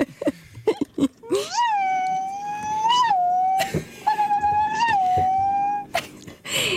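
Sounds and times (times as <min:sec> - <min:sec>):
human voice imitating whimpering puppies: 0:00.8 - 0:06.2.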